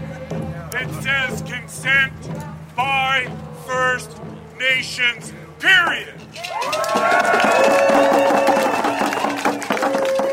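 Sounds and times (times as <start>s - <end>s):
speech: 0.8s - 8.5s
large outdoor crowd cheering and shouting at a street rally on Granville Street in Vancouver: 5.7s - 10.3s
sustained high calls or whoops from crowd: 6.4s - 10.3s.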